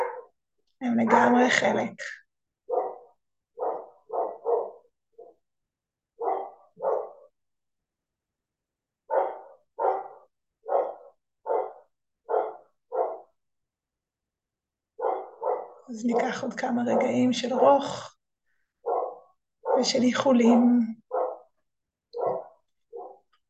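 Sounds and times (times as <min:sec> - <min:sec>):
dogs barking: 0:00.0 - 0:00.3, 0:01.0 - 0:01.5, 0:02.7 - 0:05.4, 0:06.2 - 0:07.3, 0:09.1 - 0:13.3, 0:15.0 - 0:17.9, 0:18.8 - 0:23.3
speech: 0:00.8 - 0:02.2, 0:16.0 - 0:18.1, 0:19.8 - 0:21.0.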